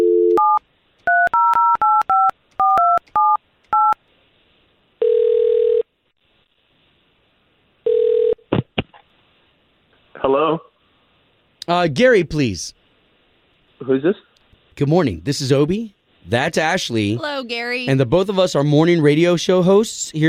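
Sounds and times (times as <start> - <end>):
telephone ringback tone: 0.0 - 4.0, 5.0 - 5.9, 7.9 - 8.4
speech: 11.7 - 12.8, 13.8 - 20.2.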